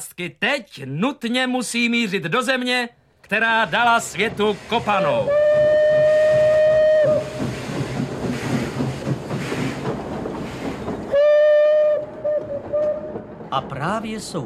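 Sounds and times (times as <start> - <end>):
speech: 0.0 - 5.6, 13.5 - 14.4
steam train chugging with a steady rhythmic clatter: 3.3 - 14.4
loud shrill steam train whistle blowing: 4.8 - 7.4, 11.1 - 13.1.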